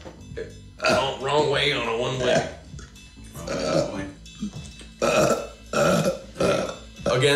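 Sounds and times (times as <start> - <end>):
man's half-suppressed burp in throaty bursts: 0.3 - 1.2, 2.2 - 2.7, 3.3 - 7.3
speech: 0.8 - 2.6.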